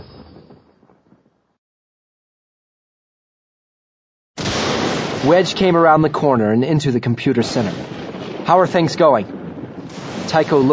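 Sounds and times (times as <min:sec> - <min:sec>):
explosive blast: 0:04.4 - 0:06.2, 0:07.4 - 0:10.7
rumbling thunder-like boom: 0:04.4 - 0:10.7
speech: 0:05.2 - 0:10.7.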